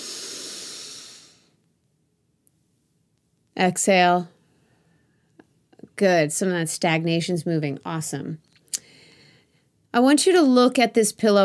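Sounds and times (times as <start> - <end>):
deep inhale during a guided breathing exercise: 0.0 - 1.5, 8.8 - 9.6
speech: 3.6 - 4.4, 6.0 - 8.5, 10.0 - 11.4.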